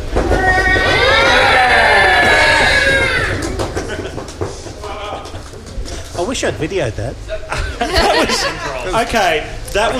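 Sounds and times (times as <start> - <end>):
live audience imitating elephant trumpeting: 0.3 - 3.6
laughter: 1.5 - 5.6, 7.3 - 9.1
speech: 6.3 - 9.9.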